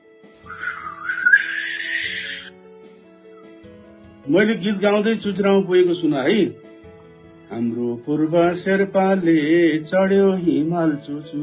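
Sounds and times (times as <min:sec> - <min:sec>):
speech: 0:00.5 - 0:00.8, 0:04.3 - 0:06.6, 0:07.5 - 0:11.4
person whistling a short wavering melody: 0:00.5 - 0:02.5.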